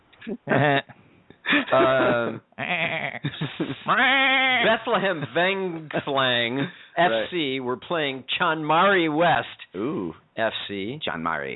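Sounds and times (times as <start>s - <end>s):
speech: 0.2s - 1.0s, 1.7s - 11.5s
laughter: 0.3s - 0.9s, 1.5s - 7.3s
goat bleating: 1.8s - 3.2s.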